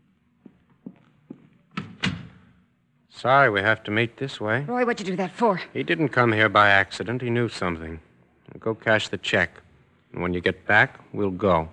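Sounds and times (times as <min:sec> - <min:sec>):
soft footsteps: 0:00.0 - 0:02.0
door swinging shut and latching against the frame: 0:01.7 - 0:02.4
speech: 0:03.2 - 0:11.7.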